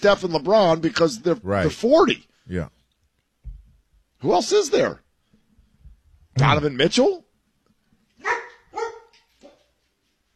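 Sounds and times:
speech: 0:00.0 - 0:02.8, 0:04.2 - 0:05.0, 0:06.4 - 0:07.2
female dog barking: 0:08.2 - 0:09.7.

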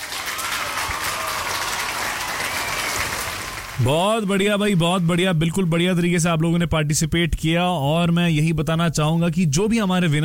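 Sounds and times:
crowd applauding: 0:00.0 - 0:05.5
speech: 0:03.8 - 0:10.2.

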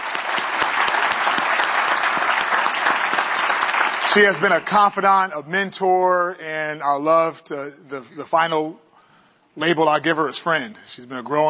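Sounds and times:
audience applause: 0:00.0 - 0:04.8
speech: 0:04.1 - 0:08.8, 0:09.6 - 0:11.4.

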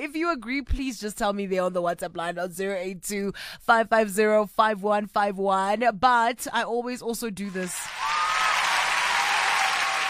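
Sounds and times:
speech: 0:00.0 - 0:08.2
hands clapping: 0:07.8 - 0:10.0.

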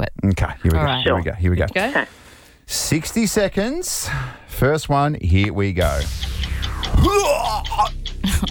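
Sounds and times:
speech: 0:00.2 - 0:08.4
voice mimicking vomiting with gurgling retch and throaty groan: 0:07.0 - 0:07.9.

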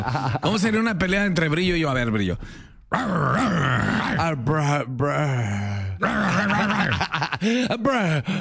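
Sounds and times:
laughter: 0:00.0 - 0:00.6, 0:06.2 - 0:08.3
speech: 0:00.0 - 0:08.3
person imitating dog growls and panting: 0:02.9 - 0:04.2, 0:06.0 - 0:07.1.

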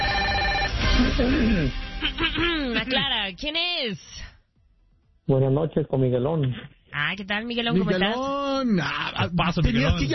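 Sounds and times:
telephone ringing for an incoming call: 0:00.0 - 0:00.9
speech: 0:01.0 - 0:04.3, 0:05.3 - 0:10.1.

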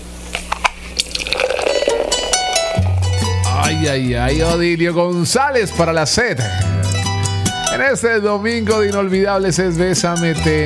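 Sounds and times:
low hum: 0:00.0 - 0:04.8
drink pouring into a glass: 0:00.9 - 0:03.2
ice clinking in a glass: 0:01.0 - 0:03.4
speech: 0:03.8 - 0:06.8, 0:07.8 - 0:10.6.

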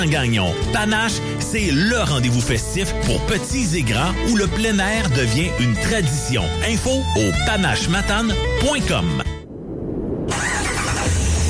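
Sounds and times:
speech: 0:00.0 - 0:09.2
pickup truck engine catching and roaring into life: 0:10.3 - 0:11.4.

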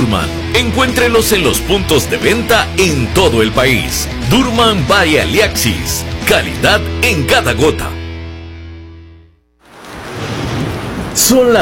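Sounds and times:
music: 0:00.0 - 0:09.4
speech: 0:00.1 - 0:08.0, 0:11.2 - 0:11.5
steady rain on a cold early morning: 0:09.6 - 0:11.5.

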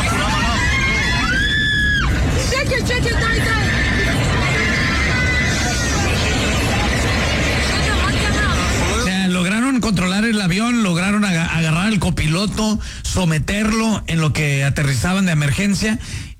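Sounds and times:
passengers screaming in panic aboard a falling airplane: 0:00.0 - 0:09.1
constant roar aboard a falling airplane: 0:00.0 - 0:15.8
speech: 0:12.4 - 0:16.3.

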